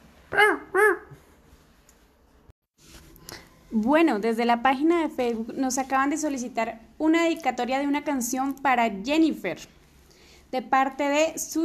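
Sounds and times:
dog barking: 0.3 - 1.2
speech: 3.7 - 9.8, 10.5 - 11.6.

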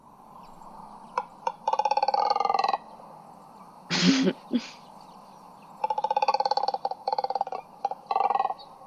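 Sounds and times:
double-crested cormorant croaking calls: 1.1 - 3.0, 5.7 - 8.8
burst of noise: 3.9 - 4.8.

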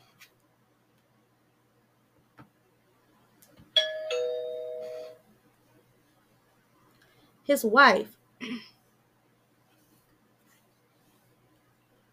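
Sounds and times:
doorbell ringing with a two-tone chime: 3.8 - 5.2
speech: 7.5 - 8.7.

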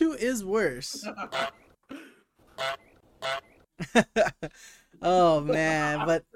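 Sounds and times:
speech: 0.2 - 1.6, 3.8 - 6.3
goose-honk sound effect from a soundboard: 1.2 - 1.7, 2.5 - 3.6.

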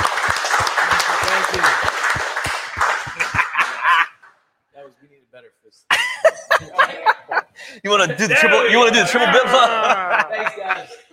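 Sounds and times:
crowd clapping and cheering: 0.0 - 4.3
laughter: 2.9 - 4.3, 5.9 - 11.1
speech: 5.5 - 7.1, 7.8 - 10.2.

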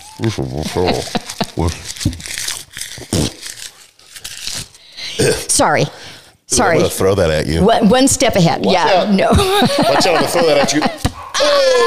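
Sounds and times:
crunchy chewing: 0.0 - 4.8
paper crinkling and tearing: 0.0 - 5.0
speech: 0.2 - 2.2, 5.6 - 11.8
laughter: 0.5 - 1.9, 9.2 - 11.8.

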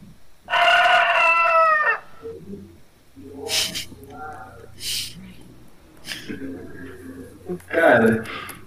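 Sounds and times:
rooster crowing in a podcast jingle: 0.4 - 2.4
quiet murmuring voices: 2.0 - 8.6.

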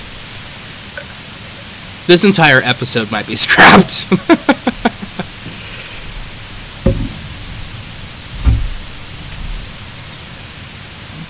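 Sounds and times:
heavy rain: 0.0 - 11.2
speech: 2.1 - 4.8
laughter: 3.7 - 5.6
low thuds: 6.2 - 9.8.

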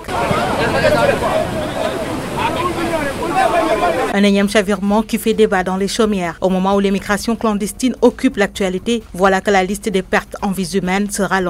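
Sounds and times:
crowd of many people talking at once: 0.0 - 4.2
waves washing onto a shore: 0.0 - 4.2
speech: 4.1 - 11.4.

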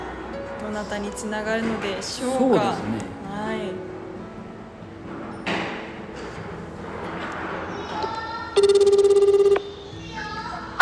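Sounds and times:
speech: 0.7 - 3.9
outgoing telephone call ringback tone: 8.6 - 9.8.

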